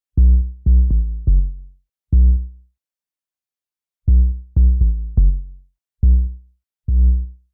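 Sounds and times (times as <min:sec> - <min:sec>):
sparse bass loop in B minor: 0:00.2 - 0:01.6, 0:04.1 - 0:07.3.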